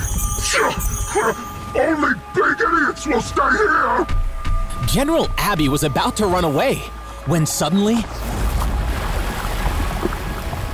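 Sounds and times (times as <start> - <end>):
speech: 0.6 - 8.4
waves surging onto a lake: 8.2 - 10.7.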